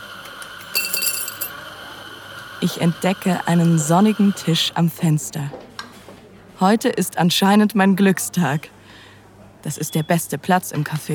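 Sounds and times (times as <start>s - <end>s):
coins dropped into a glass jar: 0.6s - 1.5s
speech: 2.6s - 5.6s, 6.6s - 8.8s, 9.6s - 11.1s.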